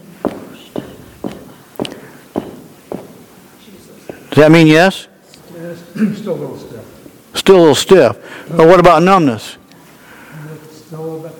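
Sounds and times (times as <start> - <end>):
person stomping a foot on a hard floor: 0.2 - 3.3
speech: 4.4 - 5.1, 6.0 - 6.7, 7.4 - 9.6.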